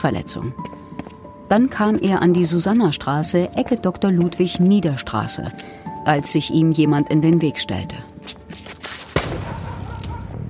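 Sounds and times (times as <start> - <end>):
speech: 0.0 - 0.8, 1.5 - 8.4
gunshot fired at a street corner at night: 9.1 - 10.1.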